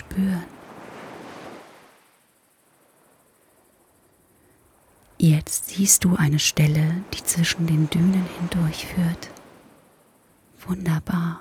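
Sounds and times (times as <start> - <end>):
ocean wave surging onto a beach beyond the dunes: 0.0 - 2.1, 6.4 - 9.8
speech: 0.2 - 0.6, 5.2 - 9.4, 10.6 - 11.3.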